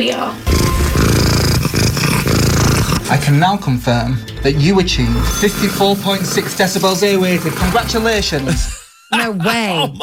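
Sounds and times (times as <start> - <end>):
speech: 0.0 - 1.0, 3.1 - 10.0
domestic cat purring loudly: 0.5 - 3.1.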